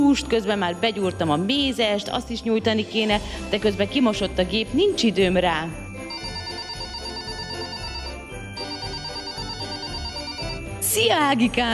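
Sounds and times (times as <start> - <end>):
speech: 0.0 - 5.8, 11.0 - 11.7
phone ringtone with bright repeating electronic melody: 5.9 - 11.1.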